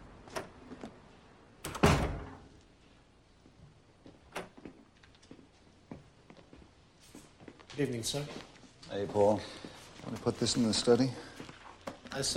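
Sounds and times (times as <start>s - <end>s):
front door of a house opening: 1.6s - 2.6s, 4.2s - 4.9s
speech: 7.8s - 11.3s, 12.2s - 12.3s.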